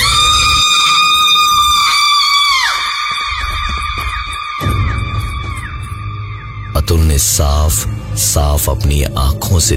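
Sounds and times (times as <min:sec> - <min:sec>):
girl screaming loud and piercing: 0:00.0 - 0:05.7
wavering shrieks: 0:00.0 - 0:06.8
speech: 0:07.2 - 0:09.7.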